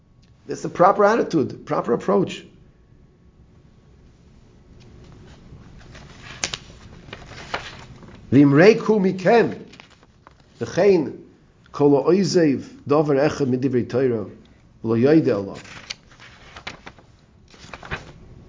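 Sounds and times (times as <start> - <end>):
speech: 0.5 - 2.5, 8.3 - 9.6, 10.6 - 15.8
book page turning with a dry papery rustle: 4.8 - 8.3, 9.3 - 10.7, 15.4 - 18.3.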